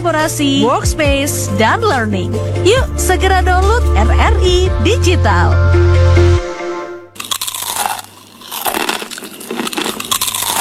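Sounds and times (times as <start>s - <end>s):
speech: 0.0s - 6.4s
brief low tonal note: 1.5s - 7.2s
Indonesian kerupuk crackers crunching: 7.2s - 10.6s.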